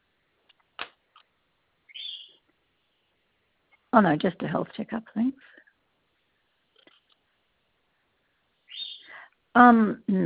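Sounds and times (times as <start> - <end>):
pet bird chirping: 1.9 - 2.4, 8.7 - 9.2
speech: 3.9 - 5.6, 9.6 - 10.2.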